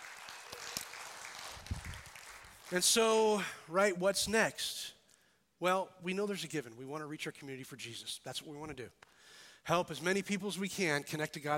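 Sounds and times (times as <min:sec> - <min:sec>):
crowd applauding: 0:00.0 - 0:03.2
speech: 0:02.7 - 0:04.9, 0:05.6 - 0:11.5.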